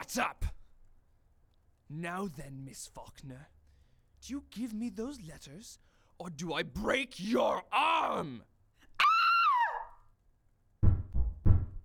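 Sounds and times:
speech: 0:00.1 - 0:00.5, 0:01.9 - 0:03.6, 0:04.2 - 0:08.5
person screaming: 0:09.0 - 0:10.0
heavy knocks on a door: 0:10.8 - 0:11.8.

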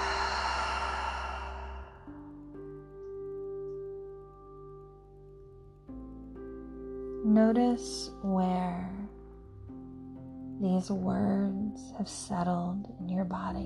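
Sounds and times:
long deep breath released as a breathy sigh: 0:00.0 - 0:02.2
soft sustained tones: 0:00.0 - 0:13.6
speech: 0:07.2 - 0:09.0, 0:10.6 - 0:13.6.

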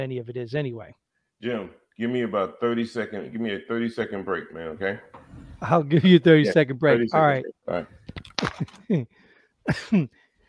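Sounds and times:
speech: 0:00.0 - 0:10.2
person coughing: 0:09.7 - 0:10.2.

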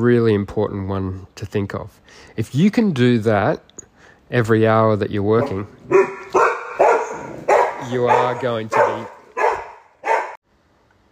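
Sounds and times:
speech: 0:00.0 - 0:06.1, 0:07.9 - 0:09.1
protective pet dog barking: 0:05.4 - 0:10.4.

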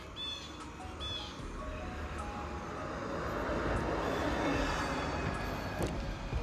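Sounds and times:
bus driving past with engine rumble and road noise: 0:00.0 - 0:06.4.

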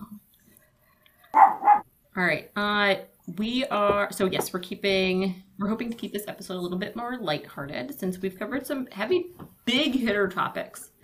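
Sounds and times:
dog barking: 0:01.3 - 0:01.8
speech: 0:02.2 - 0:10.9.

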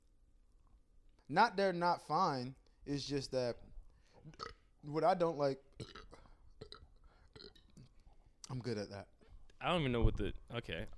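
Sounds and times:
speech: 0:01.3 - 0:06.0, 0:08.6 - 0:10.9
short throaty burps: 0:04.2 - 0:04.7, 0:05.7 - 0:08.0.

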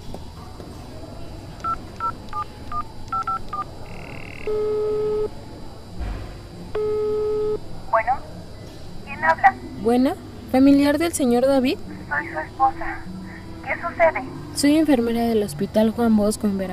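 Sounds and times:
hospital phone keypad dialing beeps: 0:01.6 - 0:05.3, 0:06.8 - 0:07.6
telephone ringback tones: 0:02.7 - 0:05.3, 0:06.8 - 0:07.6
speech: 0:09.9 - 0:13.1, 0:13.8 - 0:16.7.

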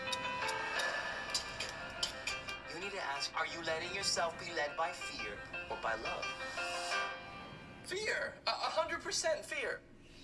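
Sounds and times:
clock ticking: 0:00.0 - 0:03.3
speech: 0:03.2 - 0:06.8, 0:07.9 - 0:09.9.

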